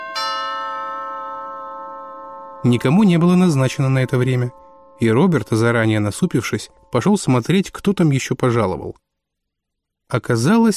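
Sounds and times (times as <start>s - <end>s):
doorbell ringing: 0.0s - 8.0s
speech: 2.6s - 9.0s, 10.1s - 10.7s.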